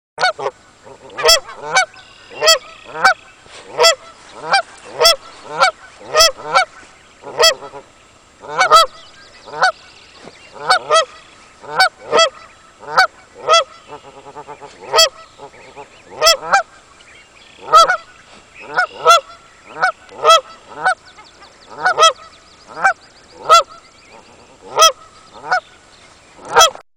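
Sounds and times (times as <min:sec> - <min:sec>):
Canada goose mother calling goslings: 0:00.2 - 0:25.8, 0:26.4 - 0:26.8.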